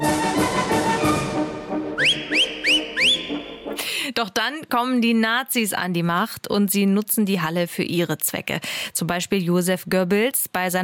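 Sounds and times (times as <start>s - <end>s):
orchestral waltz music: 0.0s - 3.8s
loud sharp whistles sliding upward in rhythm with the music: 2.0s - 3.7s
speech: 4.2s - 10.8s.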